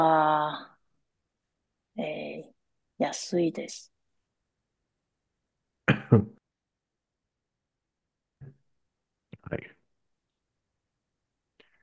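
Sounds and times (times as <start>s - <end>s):
speech: 3.0s - 3.9s, 6.1s - 6.4s, 9.5s - 9.7s
person coughing: 5.9s - 6.3s.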